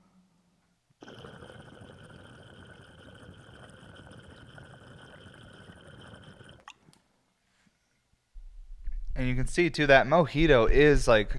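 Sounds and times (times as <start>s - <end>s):
water bubbling through percolator of transparent glass pipe: 1.0s - 6.7s
speech: 9.2s - 11.3s.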